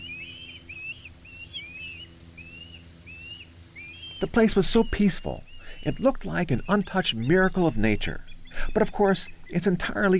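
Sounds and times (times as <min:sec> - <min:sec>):
low hum: 0:00.0 - 0:10.1
osprey calls near a nest on an iron watchtower on the Chesapeake Bay: 0:00.0 - 0:10.1
steady hiss: 0:02.2 - 0:10.1
speech: 0:04.2 - 0:10.1.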